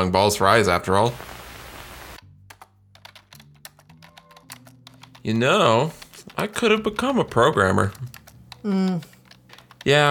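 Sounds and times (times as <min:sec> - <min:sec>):
speech: 0:00.0 - 0:01.4, 0:05.2 - 0:09.1, 0:09.8 - 0:10.0
typing on a computer keyboard: 0:02.5 - 0:05.3, 0:05.9 - 0:10.0.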